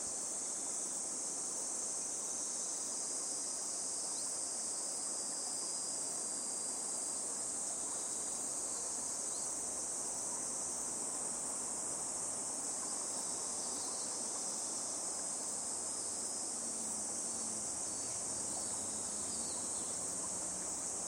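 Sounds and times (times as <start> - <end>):
chorus of insects trilling: 0.0 - 21.0
babbling stream: 5.8 - 21.0.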